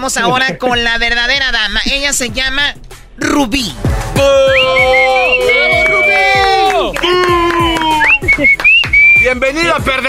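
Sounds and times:
speech: 0.0 - 5.4, 9.2 - 10.0
crowd shouting: 4.2 - 8.4
people whistling at someone: 4.2 - 9.4
crowd clapping: 4.6 - 10.0.

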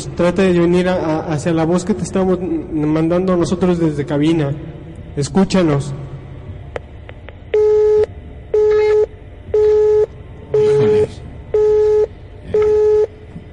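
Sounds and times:
speech: 0.1 - 6.1
telephone busy tone after a dropped call to a radio booth: 7.6 - 13.5.

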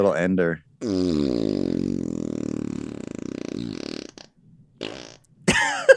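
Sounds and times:
speech: 0.0 - 2.0
long low buzzing fart with sputters and squeaky finish: 0.8 - 5.6.

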